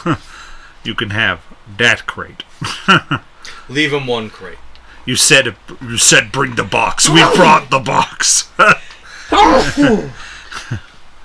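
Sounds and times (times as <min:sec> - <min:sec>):
speech: 0:00.0 - 0:08.8, 0:09.6 - 0:10.8
loud sneeze: 0:07.1 - 0:07.6, 0:09.3 - 0:10.1.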